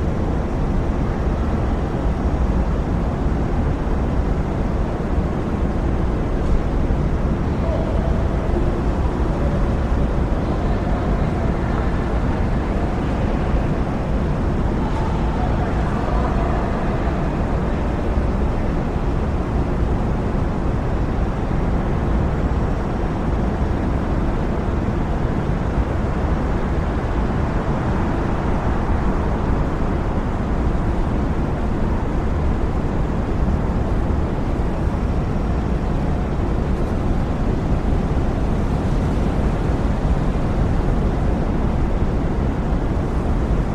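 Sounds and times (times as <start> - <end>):
low steady rumble of city street traffic: 0.0 - 43.7.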